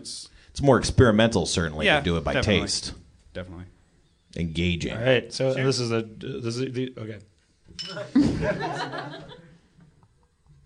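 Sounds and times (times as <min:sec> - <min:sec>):
speech: 0:00.0 - 0:09.4
drink knocked against a podium in a toast: 0:07.7 - 0:08.3
people chuckling: 0:07.8 - 0:10.0.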